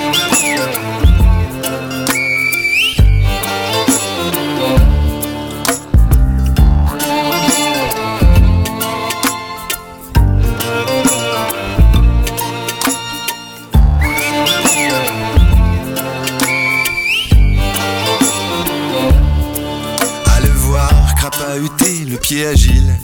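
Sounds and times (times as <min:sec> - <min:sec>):
loud busy music with heavy bass and sharp percussive hits: 0:00.0 - 0:02.2, 0:02.9 - 0:23.0
short piercing farewell whistle: 0:00.0 - 0:04.1, 0:13.8 - 0:18.8.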